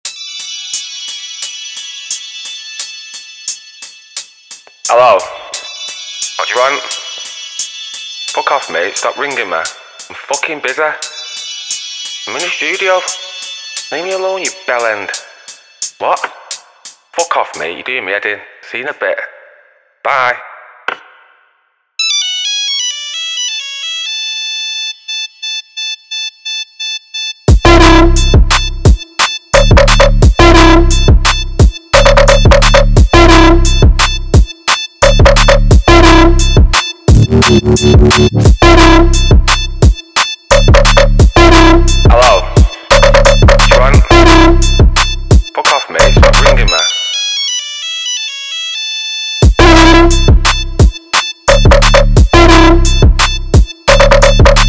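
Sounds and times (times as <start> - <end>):
trap phone drum and bass dub beat: 2.8 - 17.7, 27.5 - 46.8, 49.4 - 54.6.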